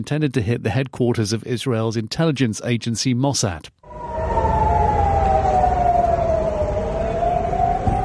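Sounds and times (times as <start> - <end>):
speech: 0.0 - 4.0
air raid siren wailing over Tel Aviv during a ballistic missile attack: 3.8 - 8.0.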